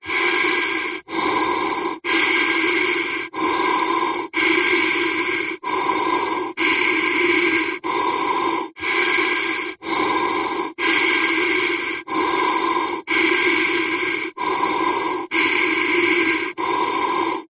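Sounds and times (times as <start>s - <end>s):
firefighter mask steady deep breaths: 0.0s - 17.5s.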